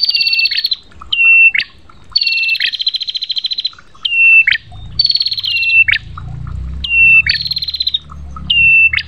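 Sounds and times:
prinia singing rapid buzzy stuttering trills and short clear whistles: 0.0 - 9.0
low rumbling hum: 3.9 - 9.0.

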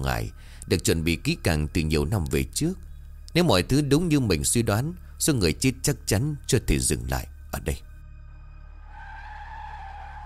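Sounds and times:
speech: 0.0 - 7.9
car tires screeching under hard braking: 8.8 - 10.2.

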